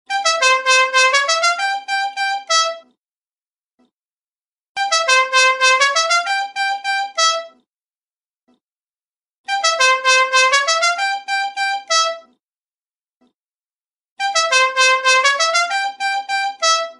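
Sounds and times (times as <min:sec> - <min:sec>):
musical car horn: 0:00.1 - 0:02.9, 0:04.8 - 0:07.6, 0:09.5 - 0:12.3, 0:14.2 - 0:16.9.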